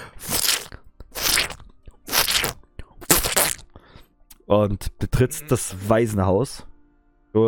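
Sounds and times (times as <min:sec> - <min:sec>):
mouth-imitated boots squelching through a puddle of blood: 0:00.0 - 0:03.6
speech: 0:04.5 - 0:06.7.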